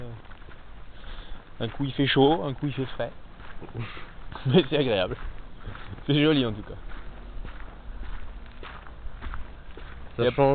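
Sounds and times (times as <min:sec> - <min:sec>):
footsteps walking along a road in an Estonian village: 0:00.0 - 0:10.5
low continuous noise: 0:00.0 - 0:10.5
speech: 0:01.6 - 0:07.0, 0:10.2 - 0:10.5
laughter: 0:03.6 - 0:06.0.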